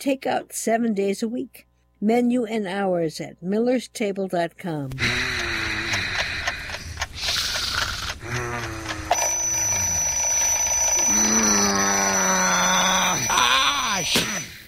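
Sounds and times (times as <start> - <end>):
speech: 0.0 - 5.3
person groaning and moaning: 5.0 - 10.0, 11.0 - 14.6
alarm clock ringing with a shrill high-pitched tone: 8.8 - 11.6.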